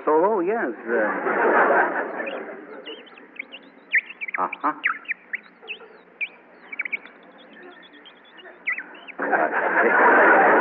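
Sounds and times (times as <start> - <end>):
brief bursts of broadband noise: 0.0 - 10.6
speech: 0.1 - 2.6, 4.4 - 5.0
laughter: 0.7 - 10.6
squeaky bird-call whistle chirping: 2.2 - 9.2.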